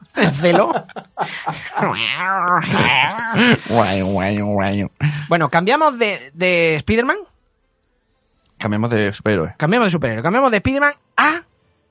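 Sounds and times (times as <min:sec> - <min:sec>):
laughter: 0:00.0 - 0:05.3
speech: 0:00.2 - 0:07.3, 0:08.6 - 0:11.5
person imitating a yowling cat in heat: 0:01.8 - 0:04.4.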